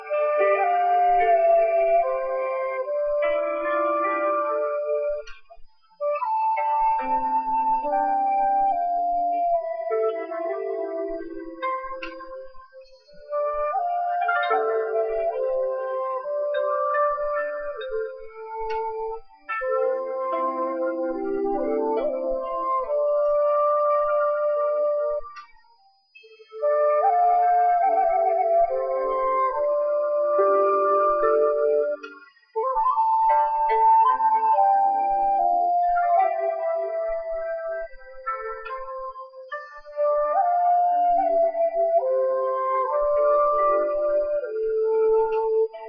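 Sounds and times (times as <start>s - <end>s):
Japanese flute: 0.0s - 45.8s.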